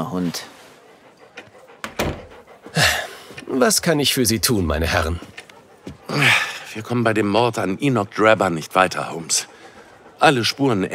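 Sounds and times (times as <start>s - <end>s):
speech: 0.0s - 0.6s, 3.5s - 5.3s, 6.1s - 9.5s, 10.2s - 10.9s
door being shut: 1.8s - 2.3s.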